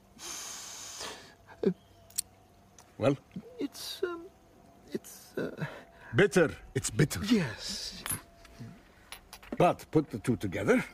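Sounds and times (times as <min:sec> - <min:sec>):
person sniffing a substance: 0:00.2 - 0:01.3
speech: 0:01.6 - 0:01.8, 0:03.0 - 0:08.7, 0:09.6 - 0:10.9.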